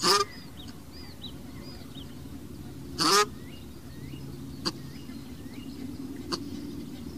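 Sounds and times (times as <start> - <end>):
Cape shelduck nasal honk: 0.0 - 0.3, 3.0 - 3.3
other birds giving thin whistled chirps: 0.0 - 7.1
steady low background rumble: 0.0 - 7.1.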